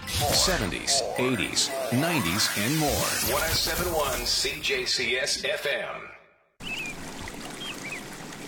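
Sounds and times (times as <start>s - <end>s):
speech: 0.2s - 6.1s
river water flowing: 6.6s - 8.4s.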